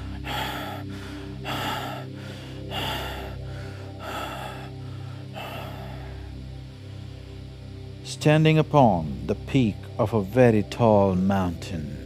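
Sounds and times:
heavy rasping gasping breaths: 0.0 - 6.6
speech: 8.1 - 12.0.

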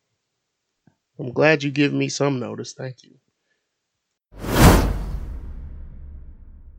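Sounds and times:
speech: 1.2 - 3.3
broadband swoosh transition sound effect: 4.4 - 6.7.

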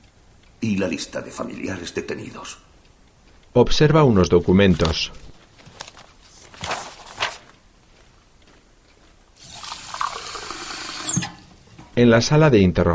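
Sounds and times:
speech: 0.7 - 2.7, 3.6 - 5.2, 12.0 - 12.9
footsteps: 4.6 - 9.3
water poured into a glass: 9.4 - 11.2.

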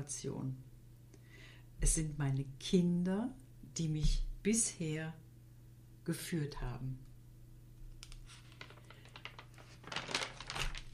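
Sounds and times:
speech: 0.0 - 0.7, 1.8 - 5.2, 6.1 - 7.1
paper page of a written speech being turned: 8.0 - 10.9.

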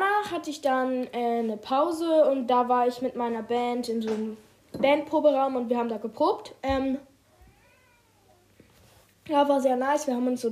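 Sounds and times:
speech: 0.2 - 7.1, 9.3 - 10.5
male cat meowing: 7.3 - 8.5.

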